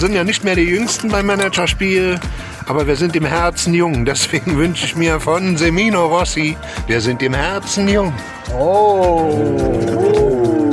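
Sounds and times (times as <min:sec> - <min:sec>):
speech: 0:00.0 - 0:10.2
cat yowling meow: 0:08.5 - 0:10.7.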